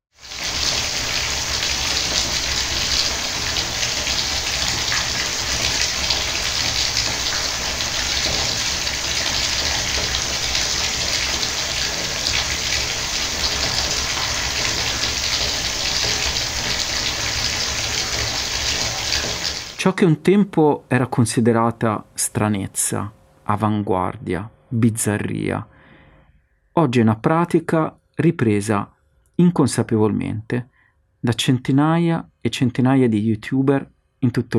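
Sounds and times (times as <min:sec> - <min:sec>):
water gushing into a bathtub: 0:00.1 - 0:19.8
speech: 0:19.9 - 0:25.7, 0:26.8 - 0:34.5.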